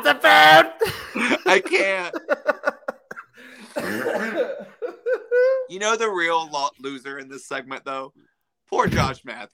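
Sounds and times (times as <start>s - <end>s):
speech: 0.0s - 2.8s, 5.7s - 9.5s
laughter: 0.8s - 5.7s
person coughing loudly: 3.1s - 5.3s.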